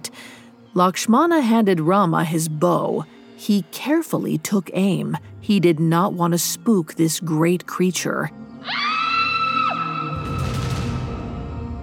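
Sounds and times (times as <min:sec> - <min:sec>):
speech: 0:00.7 - 0:08.9
loud high-pitched scream: 0:08.6 - 0:10.9.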